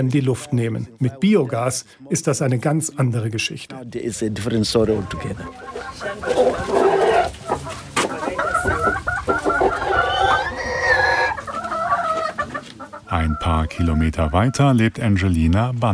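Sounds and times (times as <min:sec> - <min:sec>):
speech: 0:00.0 - 0:07.0, 0:13.4 - 0:15.9
chickens clucking: 0:04.0 - 0:15.7.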